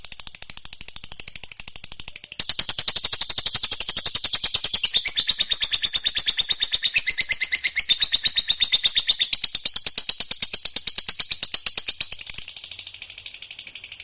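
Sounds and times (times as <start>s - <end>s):
fighter lovebird chattering and singing: 2.4s - 13.5s.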